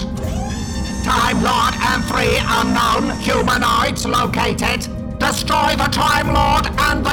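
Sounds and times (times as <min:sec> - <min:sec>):
heavy mechanical door lock engaging with a grinding creak: 0:00.2 - 0:03.6
speech: 0:01.1 - 0:07.1.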